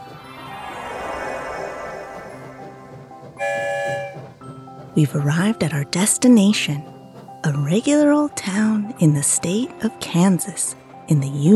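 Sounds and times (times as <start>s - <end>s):
train travelling through a tunnel: 0.0s - 11.5s
train horn blast: 3.4s - 4.4s
speech: 5.0s - 11.5s.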